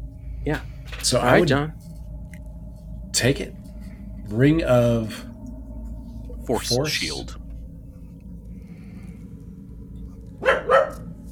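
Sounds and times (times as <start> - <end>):
low steady hum: 0.0 - 11.3
speech: 0.4 - 1.8, 3.1 - 3.6, 4.3 - 5.3, 6.4 - 7.4
dog barking: 10.4 - 11.1.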